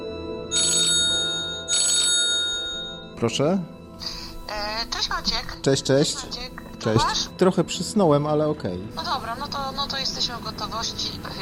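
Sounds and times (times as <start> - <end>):
telephone ringing with a trilling electronic ring: 0.4 - 3.1
speech: 3.2 - 11.4.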